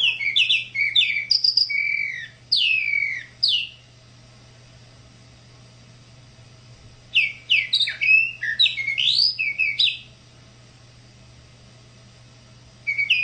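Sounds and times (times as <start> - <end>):
tropical mockingbird song: 0.0 - 3.9, 7.1 - 10.2, 12.9 - 13.2.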